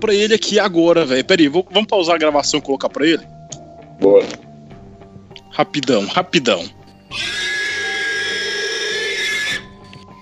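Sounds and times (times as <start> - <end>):
speech: 0.0 - 3.4, 4.0 - 4.5, 5.5 - 7.4
recording of a pig squealing played back: 7.1 - 10.2.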